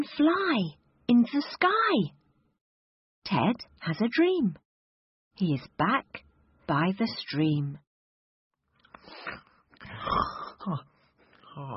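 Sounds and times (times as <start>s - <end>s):
speech: 0.0s - 2.2s, 3.2s - 4.6s, 5.4s - 7.8s, 9.1s - 10.9s, 11.6s - 11.7s
wheezy snorting snores: 9.9s - 10.6s.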